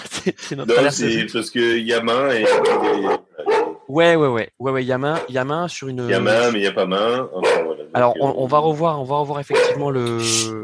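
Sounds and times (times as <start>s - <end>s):
laughter: 0.0s - 3.5s, 6.1s - 8.4s
speech: 0.2s - 10.6s
German shepherd dog barking: 2.4s - 3.8s, 7.4s - 8.0s, 9.5s - 9.8s.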